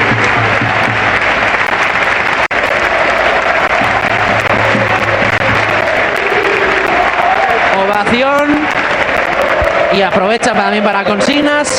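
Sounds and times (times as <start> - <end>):
large stadium crowd applauding at a plaque presentation before a match: 0.0 - 11.7
speech: 8.0 - 8.6, 10.0 - 11.7.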